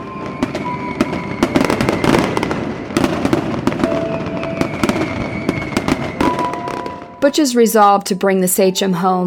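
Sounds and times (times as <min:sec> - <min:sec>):
faint sustained whistling tones of fireworks: 0:00.0 - 0:03.0, 0:03.8 - 0:07.4
fireworks over Hudson Bay bursting in cracks and booms: 0:00.0 - 0:07.5
speech: 0:07.2 - 0:09.2.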